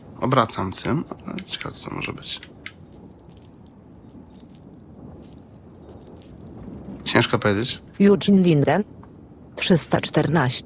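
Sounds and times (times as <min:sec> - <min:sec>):
low rumbling background: 0:00.0 - 0:10.6
speech: 0:00.2 - 0:02.6, 0:07.3 - 0:09.0, 0:09.7 - 0:10.6
keys jangling and clinking: 0:01.1 - 0:07.6.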